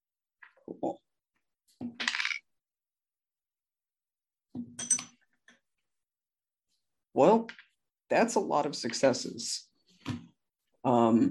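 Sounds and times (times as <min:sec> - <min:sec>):
speech: 0:00.7 - 0:01.0, 0:07.2 - 0:10.2, 0:10.8 - 0:11.3
dice clattering across a hard tabletop: 0:02.0 - 0:02.4.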